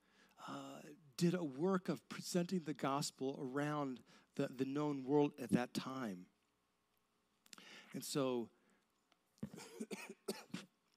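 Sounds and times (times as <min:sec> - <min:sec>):
speech: 0:00.5 - 0:06.3, 0:07.6 - 0:08.6, 0:09.4 - 0:10.6
person coughing hoarsely during a church teaching: 0:09.4 - 0:10.6.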